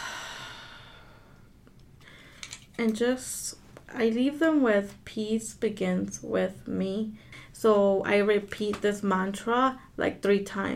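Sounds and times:
deep breath during guided meditation: 0:00.0 - 0:02.6
speech: 0:02.8 - 0:10.7.

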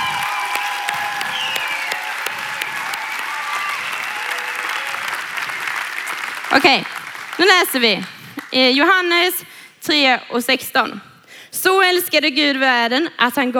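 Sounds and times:
applause from a large audience: 0:00.0 - 0:08.9
speech: 0:06.6 - 0:13.5.

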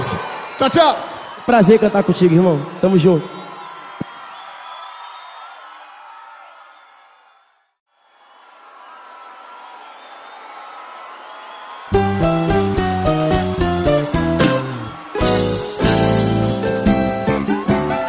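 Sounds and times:
speech: 0:00.0 - 0:03.4
live crowd cheering and whooping: 0:00.0 - 0:18.0
music with a steady beat: 0:12.0 - 0:18.0.

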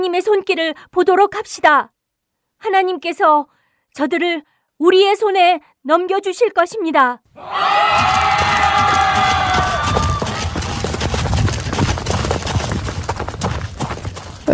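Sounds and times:
speech: 0:00.0 - 0:02.0, 0:02.6 - 0:08.3
large crowd of soldiers shouting and roaring: 0:07.4 - 0:11.0
scattered yells: 0:07.4 - 0:11.1
churning battle din with hoofbeat-like clatter: 0:07.5 - 0:14.2.

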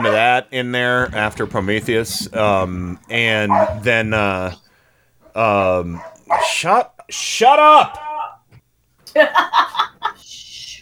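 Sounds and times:
neighbor's dog barking outside a side window: 0:00.0 - 0:00.3, 0:03.5 - 0:04.0, 0:06.0 - 0:06.6
speech: 0:00.4 - 0:04.7, 0:05.3 - 0:08.1, 0:09.2 - 0:10.4.

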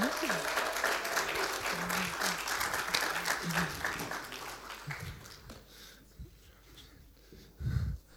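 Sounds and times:
audience applause for panelists: 0:00.0 - 0:05.7.

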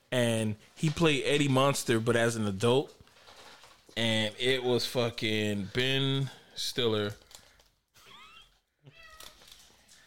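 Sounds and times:
speech: 0:00.1 - 0:03.0, 0:04.0 - 0:07.2
high-pitched cat meows: 0:08.1 - 0:09.5.

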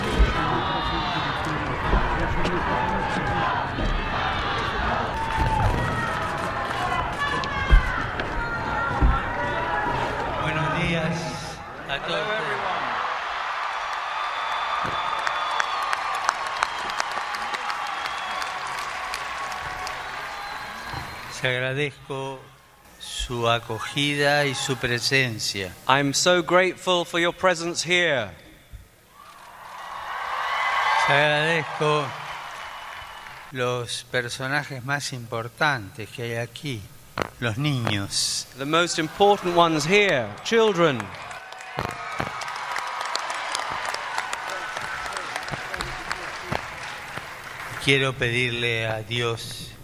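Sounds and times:
large outdoor crowd applauding outside the U.S. Capitol: 0:00.0 - 0:08.8, 0:12.3 - 0:21.4, 0:29.2 - 0:33.6, 0:38.8 - 0:48.8
large outdoor crowd cheering outside the U.S. Capitol: 0:00.0 - 0:22.7, 0:23.3 - 0:25.8, 0:29.1 - 0:33.6, 0:37.4 - 0:49.4
speech: 0:21.4 - 0:22.4, 0:23.3 - 0:28.4, 0:31.1 - 0:32.2, 0:33.5 - 0:41.9, 0:47.9 - 0:49.7.

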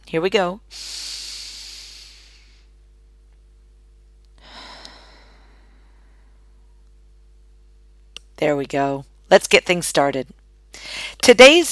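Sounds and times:
low hum: 0:00.0 - 0:09.3
speech: 0:00.1 - 0:01.1, 0:08.4 - 0:11.7
person breathing deeply in through the nose and out through the mouth: 0:00.7 - 0:02.8, 0:04.4 - 0:06.6.

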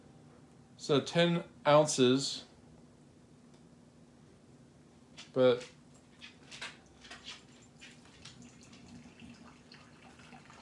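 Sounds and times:
speech: 0:00.8 - 0:02.5, 0:05.4 - 0:05.8
water poured slowly into a coffee filter: 0:08.4 - 0:10.6.

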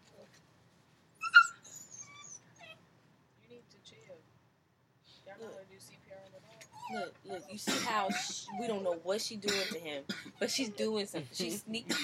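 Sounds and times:
dog yipping and whimpering: 0:01.2 - 0:02.8, 0:06.6 - 0:09.0
speech: 0:05.3 - 0:12.0.

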